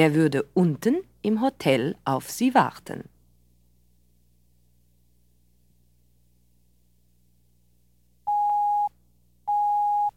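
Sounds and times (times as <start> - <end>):
speech: 0.0 - 3.1
faint low hum: 0.0 - 10.1
steady electronic telephone ringing tones: 8.3 - 8.9, 9.5 - 10.1.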